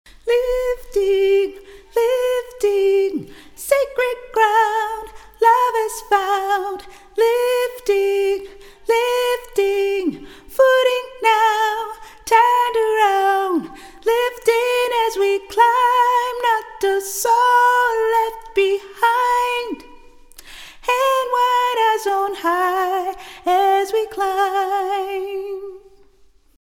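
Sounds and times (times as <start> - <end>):
choir singing soprano: 0.2 - 20.2, 20.9 - 26.0.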